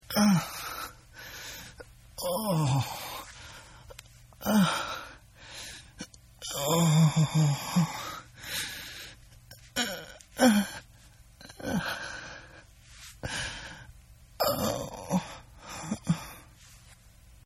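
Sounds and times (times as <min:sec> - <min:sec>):
man moaning and groaning: 0:00.0 - 0:01.0, 0:02.2 - 0:03.3, 0:04.4 - 0:05.2, 0:06.4 - 0:08.3, 0:09.6 - 0:12.2, 0:14.4 - 0:16.4.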